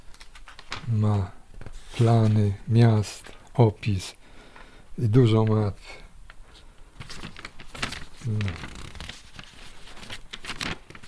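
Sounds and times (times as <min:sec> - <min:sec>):
thin bible-like paper pages of a travel guidebook rustling as turned: 0:00.0 - 0:03.5, 0:06.4 - 0:11.0
speech: 0:00.9 - 0:01.4, 0:02.0 - 0:04.2, 0:05.0 - 0:06.0, 0:08.2 - 0:08.8.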